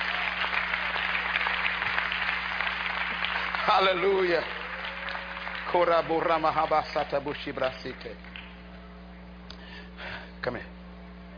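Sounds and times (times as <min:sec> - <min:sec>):
crowd clapping: 0:00.0 - 0:08.8
faint low hum: 0:00.0 - 0:11.3
speech: 0:03.7 - 0:04.6, 0:05.7 - 0:08.3, 0:10.4 - 0:10.8.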